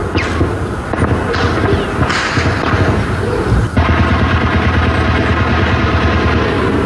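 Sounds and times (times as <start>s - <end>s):
dense rumbling wash of noise: 0.0s - 6.8s
gunshots echoing across a built-up area: 0.0s - 6.8s.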